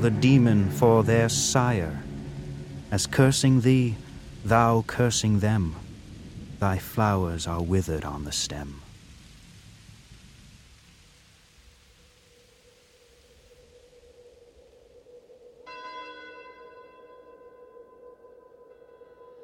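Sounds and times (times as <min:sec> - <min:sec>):
speech: 0:00.0 - 0:02.1, 0:02.9 - 0:05.8, 0:06.6 - 0:08.8
sustained ringing tone: 0:00.0 - 0:05.6, 0:14.6 - 0:19.4
low rolling thunder: 0:00.0 - 0:11.9
rain hissing: 0:00.0 - 0:15.7.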